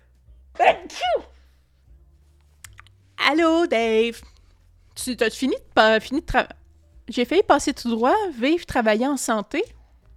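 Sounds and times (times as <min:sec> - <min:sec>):
person sneezing: 0:00.6 - 0:01.5
speech: 0:03.3 - 0:04.3, 0:05.0 - 0:09.8.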